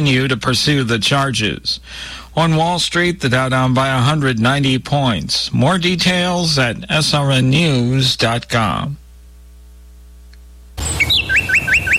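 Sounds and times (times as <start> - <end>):
speech: 0.0 - 9.0
small birds chirping in a garden: 10.8 - 11.9.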